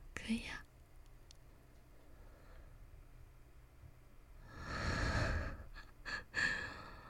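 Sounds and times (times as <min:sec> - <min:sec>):
speech: 0:00.3 - 0:00.6
soft breathing close to the microphone: 0:01.8 - 0:03.0, 0:04.4 - 0:07.0.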